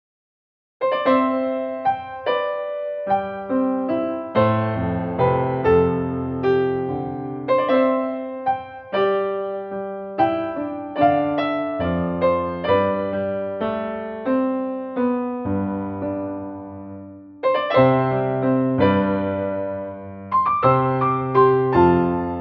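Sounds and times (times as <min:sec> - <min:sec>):
instrumental entrance music: 0:00.8 - 0:22.4.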